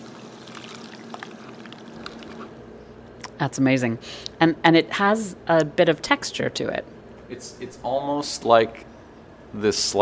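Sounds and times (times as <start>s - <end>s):
cocktail poured through a tea strainer: 0.0s - 2.5s
speech: 3.4s - 8.9s, 9.5s - 10.0s.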